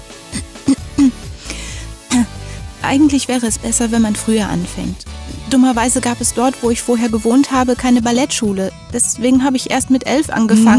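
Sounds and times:
person clearing throat: 0.3s - 2.4s
speech: 2.8s - 10.7s.

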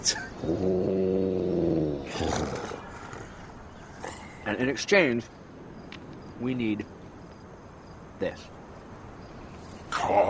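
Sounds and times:
speech: 0.0s - 1.4s, 4.5s - 5.4s, 6.4s - 7.0s, 8.2s - 8.6s, 9.9s - 10.2s
deep rumbling contented animal growl: 0.4s - 4.4s.

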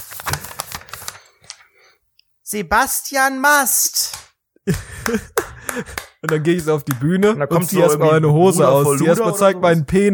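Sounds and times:
paper envelope torn open to announce an award winner: 0.0s - 1.3s
soft scattered paper crinkles: 0.0s - 1.7s
speech: 2.5s - 10.1s
laughter: 4.6s - 6.6s.

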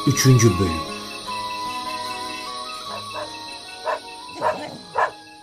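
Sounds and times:
speech: 0.1s - 1.0s
several dogs barking at night: 2.8s - 5.4s.

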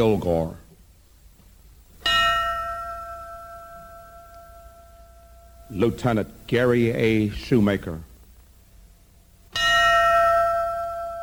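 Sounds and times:
speech: 0.0s - 0.6s, 5.7s - 8.1s
memorial bell tolling for fallen firefighters at a memorial ceremony: 2.0s - 6.5s, 9.5s - 11.2s.

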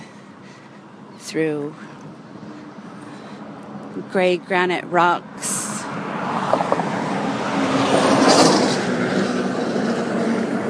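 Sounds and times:
steady highway road noise: 0.0s - 10.6s
speech: 1.3s - 2.0s, 4.0s - 5.6s
big pickup truck passing on a highway: 5.7s - 10.6s.

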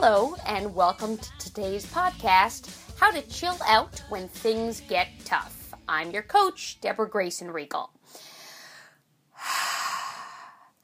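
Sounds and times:
speech: 0.0s - 8.3s
person taking a very deep breath: 8.0s - 10.8s.

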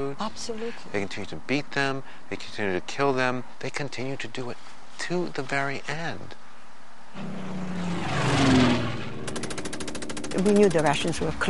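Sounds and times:
speech: 0.0s - 6.4s, 7.1s - 8.8s, 10.4s - 11.4s
propeller plane engine droning overhead: 7.1s - 11.4s.

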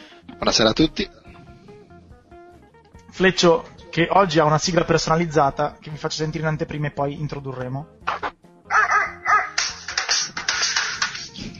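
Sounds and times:
speech: 0.4s - 1.2s, 3.1s - 8.0s
dog barking and yipping: 8.1s - 9.9s.

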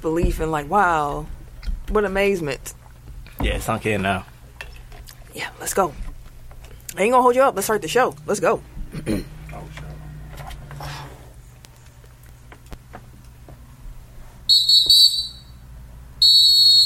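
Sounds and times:
speech: 0.0s - 2.8s, 3.4s - 4.3s, 5.3s - 6.0s, 6.9s - 9.8s
person whistling a shrill high note: 14.5s - 15.5s.

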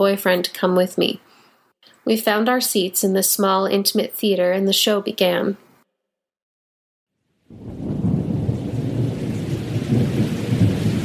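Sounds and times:
speech: 0.0s - 1.3s, 2.0s - 5.6s
deep rolling rumble of thunder: 7.5s - 11.0s
heavy pouring rain in a thunderstorm: 7.5s - 11.0s.

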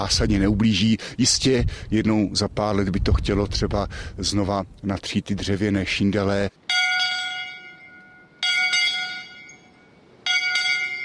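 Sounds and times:
speech: 0.0s - 6.6s
church bell ringing: 6.7s - 11.0s.

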